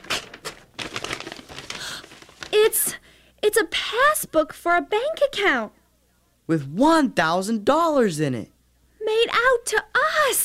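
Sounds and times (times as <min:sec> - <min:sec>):
paper crinkling and tearing as an envelope is opened: 0:00.0 - 0:02.9
speech: 0:02.5 - 0:05.8, 0:06.5 - 0:08.5, 0:09.1 - 0:10.4.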